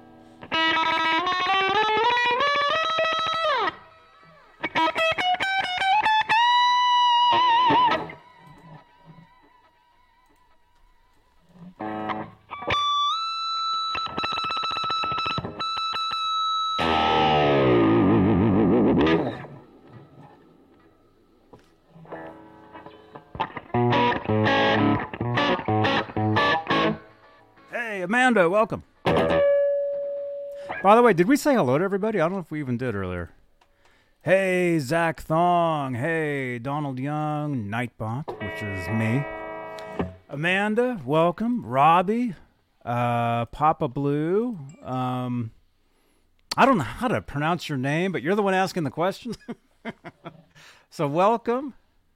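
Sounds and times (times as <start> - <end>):
slightly out of tune electric guitar playing distorted effect-laden notes with heavy reverb: 0.0 - 9.6, 11.6 - 27.7, 28.8 - 31.0, 38.3 - 40.4
speech: 28.3 - 28.9, 30.8 - 33.4, 34.2 - 39.4, 40.3 - 45.6, 46.6 - 50.0, 50.6 - 51.8.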